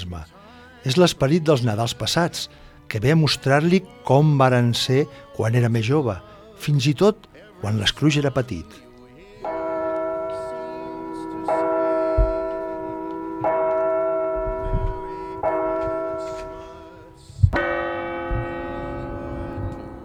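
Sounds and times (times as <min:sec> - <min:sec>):
speech: 0:00.0 - 0:08.9
clock bell striking: 0:09.4 - 0:20.0.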